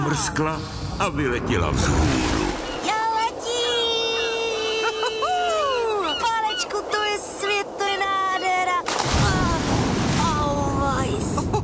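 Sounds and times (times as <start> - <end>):
surf washing: 0.0 - 11.6
wind: 0.0 - 11.6
speech: 0.1 - 2.4
belly flop splash into sea water: 8.9 - 10.5.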